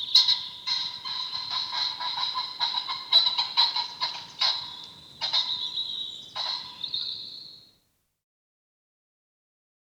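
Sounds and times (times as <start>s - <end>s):
common pheasant cackling: 0.0s - 6.9s.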